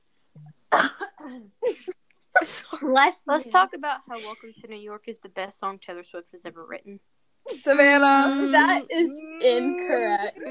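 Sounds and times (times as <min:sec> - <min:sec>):
person coughing: 0:00.7 - 0:02.8
speech: 0:01.3 - 0:01.9, 0:02.8 - 0:10.4.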